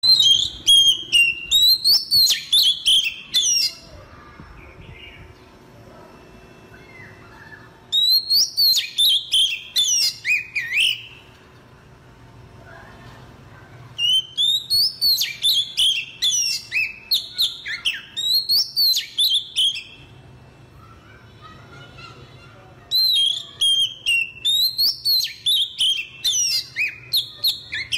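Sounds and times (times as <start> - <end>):
Oriental magpie-robin singing as a ringtone: 0.0 - 5.5, 6.7 - 11.3, 14.0 - 20.1, 22.8 - 27.9.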